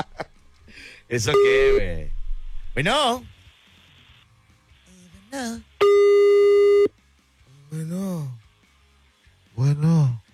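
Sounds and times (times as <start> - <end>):
speech: 1.1 - 2.2, 2.8 - 3.4, 5.3 - 5.7
steady electronic telephone call tone while dialing: 1.4 - 2.0, 5.8 - 6.9.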